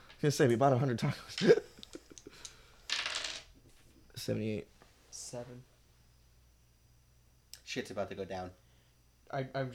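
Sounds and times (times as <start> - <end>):
speech: 0.2 - 1.7, 4.2 - 5.7, 7.7 - 8.6, 9.3 - 9.7
dice clattering across a hard tabletop: 2.9 - 3.6.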